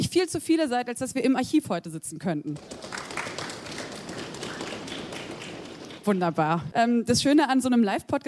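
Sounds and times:
speech: 0:00.1 - 0:02.9, 0:06.0 - 0:08.2
live audience stamping feet: 0:02.6 - 0:06.3.

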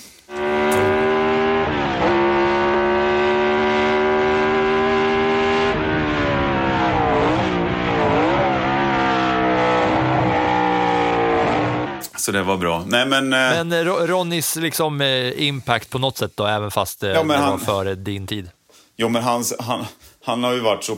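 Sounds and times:
V8 racing car engine roaring as it revs and shifts: 0:00.3 - 0:12.0
speech: 0:12.3 - 0:20.9.

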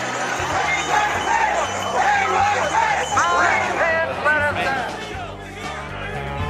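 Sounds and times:
crowd of rioters shouting while storming a government building: 0:00.0 - 0:05.9.

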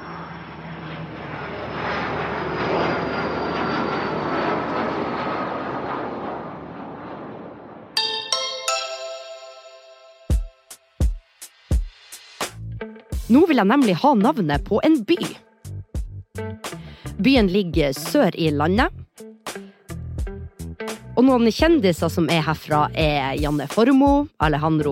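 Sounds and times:
airplane engine roar in flight: 0:00.0 - 0:09.9, 0:16.4 - 0:24.9
short bright electronic jingle: 0:08.0 - 0:10.7
speech: 0:13.3 - 0:15.4, 0:17.2 - 0:19.0, 0:21.2 - 0:24.9.

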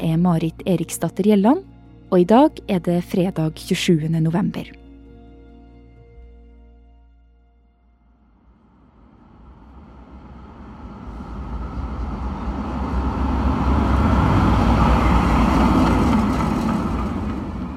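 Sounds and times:
speech: 0:00.1 - 0:04.8
road traffic: 0:08.2 - 0:17.7
rattling blue tram rumbling along a city street in Oslo: 0:09.0 - 0:17.7.

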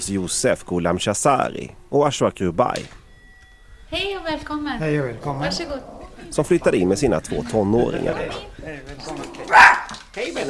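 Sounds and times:
speech: 0:00.0 - 0:03.0, 0:03.9 - 0:09.6, 0:10.2 - 0:10.4
small dog yapping in an apartment: 0:09.2 - 0:10.0.

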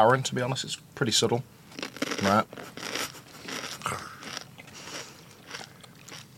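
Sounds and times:
speech: 0:00.0 - 0:02.9
person biting and crunching a crispy snack: 0:01.8 - 0:06.3
quiet chewing: 0:01.8 - 0:06.3.

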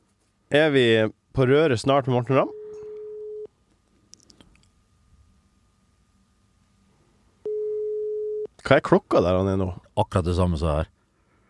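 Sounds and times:
speech: 0:00.5 - 0:02.6, 0:08.7 - 0:11.0
telephone ringback tone of a call being placed: 0:02.4 - 0:03.5, 0:07.4 - 0:08.5.

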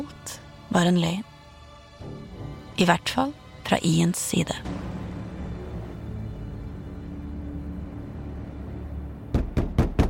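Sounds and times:
speech: 0:00.7 - 0:01.3, 0:02.8 - 0:04.8
firm knocking on a door: 0:09.3 - 0:10.0.

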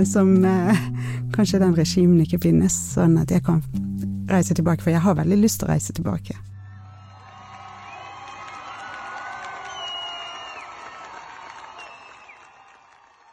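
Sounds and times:
speech: 0:00.0 - 0:06.5
large crowd of women cheering and shouting in protest: 0:06.6 - 0:13.3
high-pitched whoops and ululating cries of protesting women: 0:06.7 - 0:13.0.

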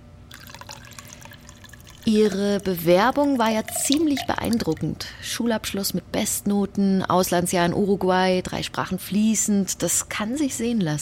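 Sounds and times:
water pouring into a glass: 0:00.3 - 0:05.0
speech: 0:02.1 - 0:11.0.

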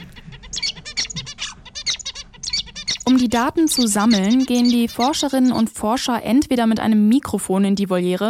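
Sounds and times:
zebra finch singing: 0:00.0 - 0:06.3
speech: 0:03.1 - 0:08.2.

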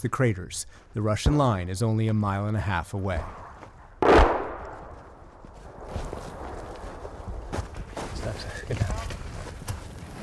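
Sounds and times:
speech: 0:00.0 - 0:03.4
footsteps on a path: 0:03.1 - 0:10.2
explosion booming: 0:04.0 - 0:08.0
rustling along a path: 0:04.6 - 0:10.2.

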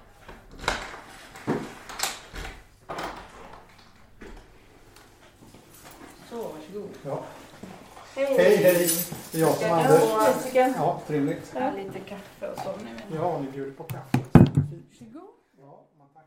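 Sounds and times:
clatter and creak of a door being opened: 0:00.0 - 0:06.2
speech: 0:06.8 - 0:07.4, 0:08.2 - 0:14.2
sharp knocks on a door: 0:13.9 - 0:14.8.

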